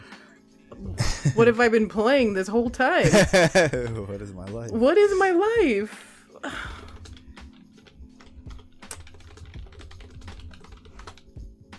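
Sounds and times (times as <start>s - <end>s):
laughter: 1.0s - 1.5s, 3.0s - 4.0s
speech: 1.2s - 6.7s
typing on a computer keyboard: 6.6s - 11.3s.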